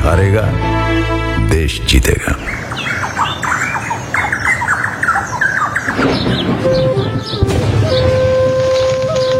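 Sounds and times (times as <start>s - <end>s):
speech: 0.1s - 2.7s
birds squawking and squealing as they fly: 2.1s - 9.3s.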